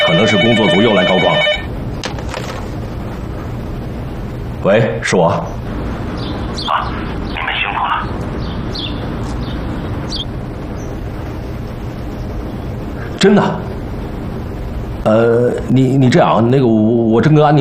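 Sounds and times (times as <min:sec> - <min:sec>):
telephone ringing with bright warbling electronic tone: 0:00.0 - 0:02.6
low hum: 0:00.0 - 0:17.5.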